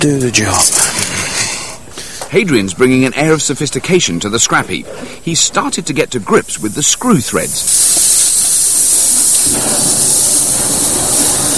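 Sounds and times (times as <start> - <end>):
speech: 0.0 - 1.2, 2.3 - 8.2
cutting torch burning through sheet steel discs: 6.2 - 11.5.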